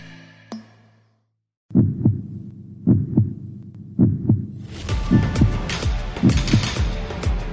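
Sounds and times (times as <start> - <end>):
heartbeat sound effect thumping in a double-beat rhythm: 1.7 - 6.7.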